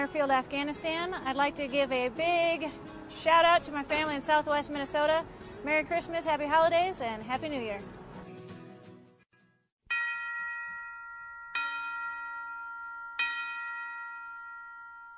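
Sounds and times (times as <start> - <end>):
speech: 0.0 - 8.0
large bell tolling: 9.9 - 15.1.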